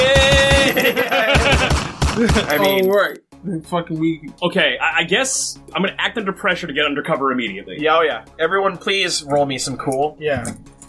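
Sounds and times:
laughter: 0:00.0 - 0:02.8
automatic gunfire sound effect: 0:01.4 - 0:02.5
speech: 0:02.2 - 0:10.8.

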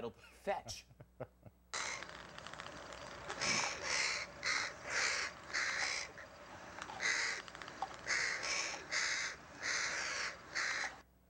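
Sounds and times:
speech: 0:00.0 - 0:01.3
crow cawing: 0:01.7 - 0:02.3, 0:03.1 - 0:11.0.

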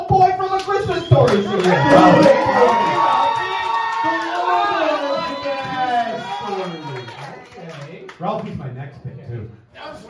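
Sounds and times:
speech: 0:00.1 - 0:02.8
live crowd clapping: 0:00.5 - 0:08.5
live crowd whooping and cheering: 0:00.8 - 0:07.8.

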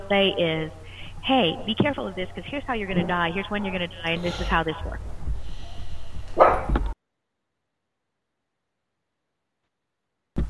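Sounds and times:
low rumble: 0:00.0 - 0:07.0
speech: 0:00.1 - 0:05.1
dog barking: 0:06.4 - 0:06.8.

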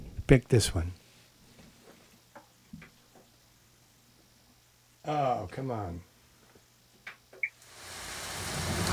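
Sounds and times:
speech: 0:00.3 - 0:01.0, 0:05.1 - 0:06.1
brief soft taps: 0:01.6 - 0:03.3
steady rain hiss from an instrumental music track: 0:07.0 - 0:08.9.

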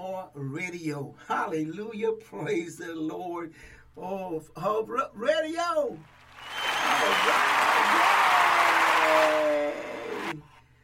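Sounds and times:
speech: 0:00.3 - 0:08.1
hand clapping: 0:06.2 - 0:10.4.

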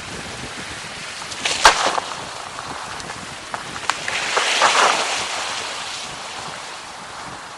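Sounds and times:
steady rush of water: 0:00.0 - 0:07.5
wind: 0:00.0 - 0:07.5
iceberg calving off a glacier near Jakobshavn cracking and popping: 0:01.3 - 0:06.9.

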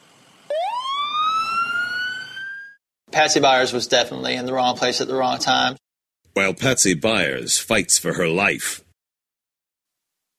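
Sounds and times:
ambulance siren wailing: 0:00.5 - 0:02.8
speech: 0:03.2 - 0:05.8, 0:06.4 - 0:08.8.

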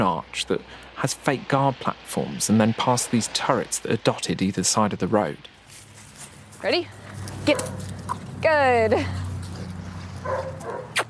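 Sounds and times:
speech: 0:00.0 - 0:05.6, 0:06.6 - 0:09.2, 0:10.2 - 0:11.0
large dog barking while playing outside: 0:07.5 - 0:08.0, 0:10.2 - 0:11.0.

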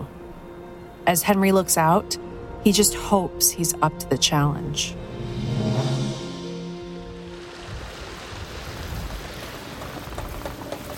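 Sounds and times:
speech: 0:01.0 - 0:05.2
low groaning creaking tones of ship hull: 0:05.0 - 0:08.2
water rushing into a ship's hull hit by ice in Antarctica: 0:06.4 - 0:10.4.

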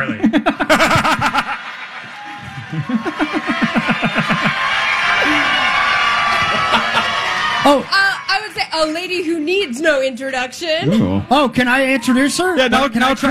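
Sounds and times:
live crowd laughing at a state fair: 0:00.0 - 0:09.4
live audience cheering at a state fair: 0:00.6 - 0:13.2
speech: 0:07.7 - 0:08.0, 0:08.8 - 0:13.2.

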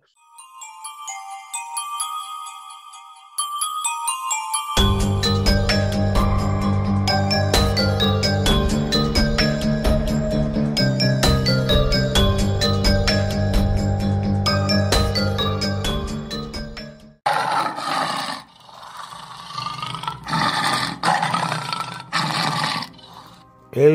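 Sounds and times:
tinkling tonal music: 0:00.0 - 0:17.0
tiger roaring: 0:17.3 - 0:23.4.

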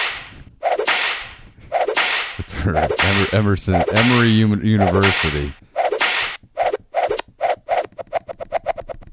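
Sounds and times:
whip cracks: 0:00.0 - 0:06.4
whip swishing: 0:00.0 - 0:08.9
speech: 0:02.6 - 0:05.6.

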